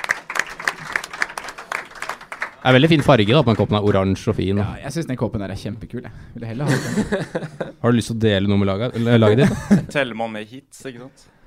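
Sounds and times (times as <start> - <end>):
applause from a small group: 0.0 - 4.8
speech: 2.6 - 11.4
laughter: 6.6 - 7.8, 8.9 - 10.0.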